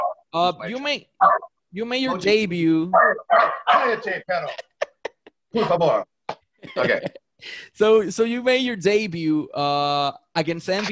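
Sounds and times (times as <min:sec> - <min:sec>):
dogs barking: 0:00.0 - 0:00.3, 0:01.2 - 0:02.3, 0:02.9 - 0:04.0
speech: 0:00.4 - 0:04.7, 0:05.5 - 0:10.8
laughter: 0:06.6 - 0:07.3.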